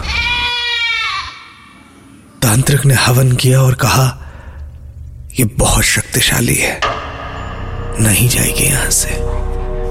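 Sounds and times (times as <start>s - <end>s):
goat screaming bleat: 0.0s - 1.7s
speech: 2.4s - 4.2s, 5.4s - 7.0s, 8.0s - 9.4s
low rumble: 6.8s - 9.8s.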